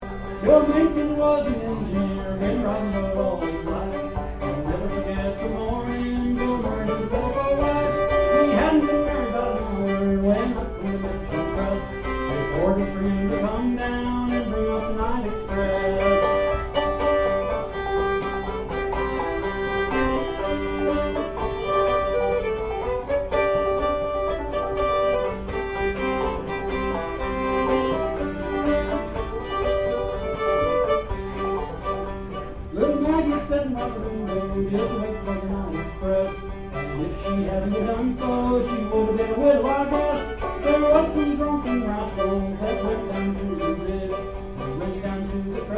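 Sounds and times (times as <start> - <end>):
fiddle: 0.0 - 45.7
guitar: 0.0 - 45.7
person singing: 0.2 - 17.0, 32.7 - 45.7.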